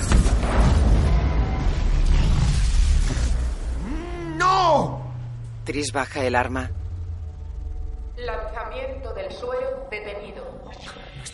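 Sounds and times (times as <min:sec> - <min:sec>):
tank exploding in a science-fiction action scene: 0:00.0 - 0:03.8
whining tone: 0:00.8 - 0:11.3
speech: 0:05.7 - 0:06.8, 0:08.2 - 0:11.3.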